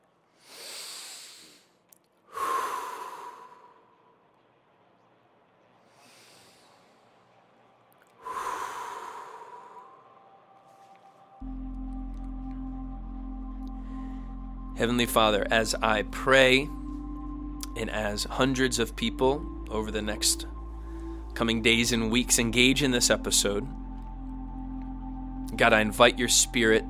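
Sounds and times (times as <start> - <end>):
deep slow breaths: 0.3 - 4.3, 5.8 - 7.5, 8.1 - 11.0, 13.6 - 14.7, 20.5 - 21.4
low steady hum: 1.7 - 26.8
speech: 14.8 - 16.8, 17.8 - 20.6, 21.4 - 23.8, 25.6 - 26.8.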